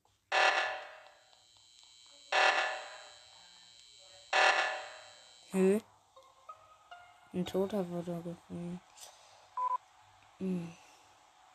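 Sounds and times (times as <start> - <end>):
harsh video game alarm buzzer: 0.3 - 5.8
speech: 5.5 - 5.9, 7.4 - 9.2, 10.4 - 10.8.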